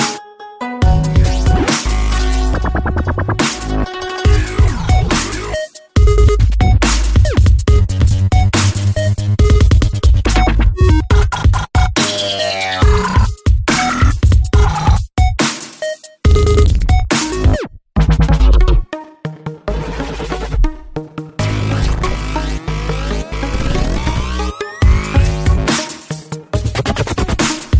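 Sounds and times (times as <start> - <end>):
dubstep ringtone: 0.0 - 19.0, 21.4 - 27.7.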